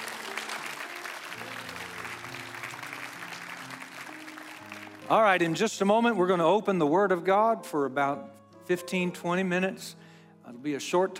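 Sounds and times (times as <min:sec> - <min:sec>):
sizable crowd applauding: 0:00.0 - 0:05.6
speech: 0:05.1 - 0:11.1.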